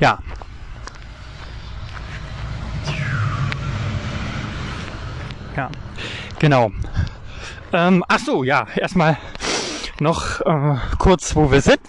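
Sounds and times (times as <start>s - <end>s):
speech: 0.0s - 0.3s, 5.6s - 9.4s, 10.0s - 11.8s
street ambience in Mahlsdorf Süd: 0.0s - 10.3s
tram rumbling past in Mahlsdorf Süd: 0.3s - 8.6s.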